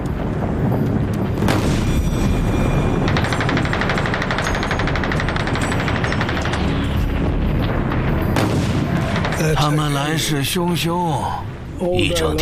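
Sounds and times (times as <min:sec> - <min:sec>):
artillery shelling of a besieged garrison: 0:00.2 - 0:09.6
rapid rattling gunfire: 0:02.8 - 0:07.2, 0:08.2 - 0:09.6
speech: 0:09.6 - 0:12.4.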